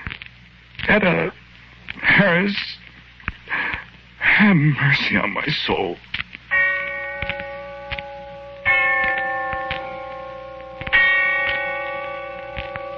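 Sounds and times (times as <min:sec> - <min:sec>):
speech: 0:00.9 - 0:01.4, 0:02.1 - 0:02.8, 0:04.4 - 0:06.1
deep bell tolling: 0:06.5 - 0:12.9.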